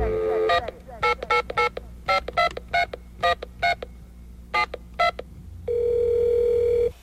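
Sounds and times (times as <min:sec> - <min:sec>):
steady telephone tone: 0:00.0 - 0:03.8, 0:04.6 - 0:06.9
touch-tone keypad beeps: 0:00.4 - 0:03.9.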